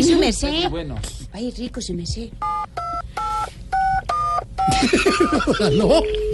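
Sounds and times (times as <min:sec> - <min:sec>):
speech: 0:00.3 - 0:02.8, 0:04.7 - 0:06.3
telephone keypad dialing beeps: 0:02.4 - 0:04.8
laughter: 0:04.7 - 0:06.2.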